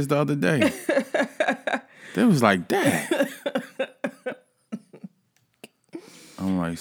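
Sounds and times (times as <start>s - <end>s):
speech: 0.0s - 3.6s, 6.4s - 6.7s
laughter: 0.6s - 5.1s
man throat-clearing coughs after eating walnuts: 2.7s - 3.8s.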